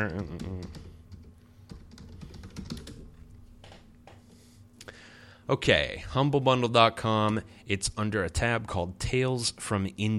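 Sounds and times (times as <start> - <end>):
speech: 0.0 - 0.9, 5.5 - 10.1
typing on a computer keyboard: 0.0 - 3.1
low steady hum: 0.0 - 10.1.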